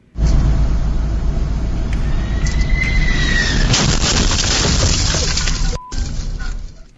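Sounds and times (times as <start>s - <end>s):
landing jet whine: 0.0s - 3.7s
road and engine roar recorded on a dash cam: 0.0s - 6.9s
rumbling noise: 0.0s - 6.9s.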